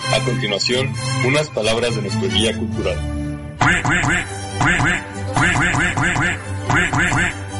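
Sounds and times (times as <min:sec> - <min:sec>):
speech: 0:00.3 - 0:07.4
duck quacking: 0:03.6 - 0:07.4.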